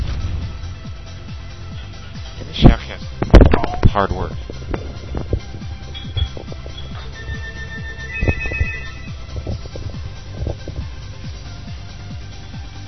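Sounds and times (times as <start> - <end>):
low thumps and clatter: 0.0 - 12.8
speech: 4.0 - 4.5
phone ringing with electronic ringtone: 6.0 - 9.2.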